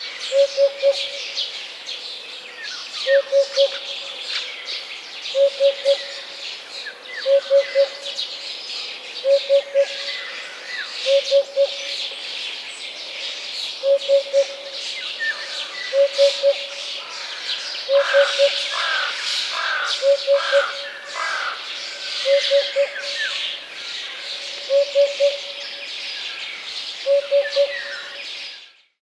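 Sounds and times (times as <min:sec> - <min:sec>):
hoopoe calling: 0:00.3 - 0:01.2, 0:03.1 - 0:04.0, 0:05.4 - 0:06.3, 0:07.2 - 0:08.2, 0:09.2 - 0:10.4, 0:11.0 - 0:12.1, 0:13.8 - 0:25.8, 0:27.0 - 0:28.2.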